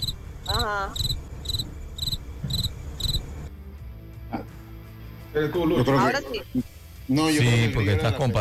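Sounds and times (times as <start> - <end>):
cricket chirping: 0.0 - 3.5
speech: 0.6 - 1.1, 5.3 - 8.4.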